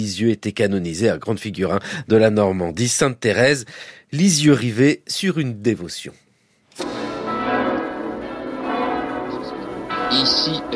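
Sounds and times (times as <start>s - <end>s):
speech: 0.0s - 6.2s
church bells of Lisieux Normandy France ringing for basilica consecration: 6.8s - 10.7s.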